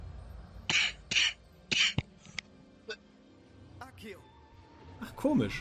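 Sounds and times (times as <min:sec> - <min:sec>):
harsh choking coughing fit: 0:00.7 - 0:02.1
speech: 0:05.2 - 0:05.5.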